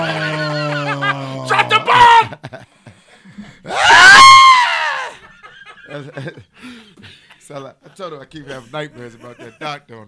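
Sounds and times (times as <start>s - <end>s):
man screaming: 0.0s - 2.4s, 3.7s - 5.2s
laughter: 0.0s - 4.0s, 5.0s - 9.9s
speech: 8.0s - 10.0s.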